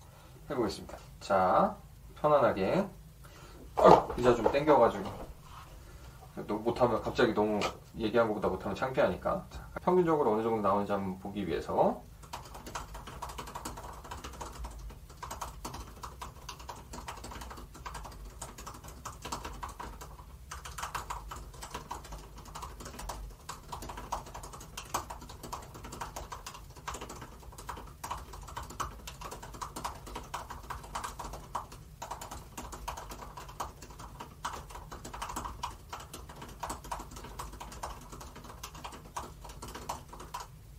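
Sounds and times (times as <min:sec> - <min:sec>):
speech: 0:00.5 - 0:03.0, 0:03.8 - 0:05.2, 0:06.4 - 0:12.1
fast typing on a computer keyboard: 0:12.2 - 0:40.6.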